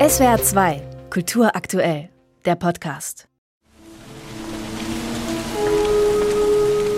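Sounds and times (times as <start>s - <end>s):
speech: 0.1s - 3.3s
steady pattering rain: 3.7s - 6.9s.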